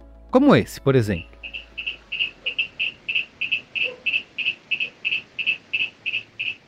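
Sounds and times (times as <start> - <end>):
speech: 0.3 - 1.6
quiet hiss: 1.3 - 6.6
Fritziana tomini bromeliad frog calling in Santa Teresa: 1.4 - 6.6.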